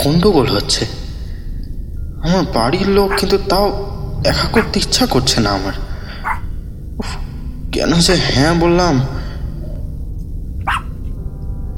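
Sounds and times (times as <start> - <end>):
speech: 0.0 - 1.0, 2.2 - 5.9, 7.0 - 9.2
constant low rumble: 0.8 - 11.7
dog barking outside: 3.1 - 3.3, 6.2 - 6.5, 10.6 - 10.9.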